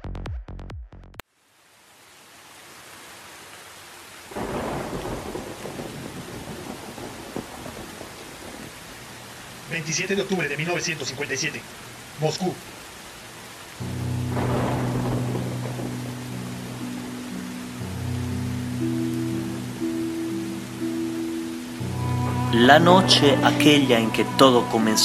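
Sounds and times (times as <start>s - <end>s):
steady dense heavy rain: 1.2s - 25.0s
deep rolls of thunder: 4.3s - 8.7s, 14.2s - 16.8s
speech: 9.9s - 12.7s, 22.6s - 25.0s
low drone: 13.9s - 24.7s.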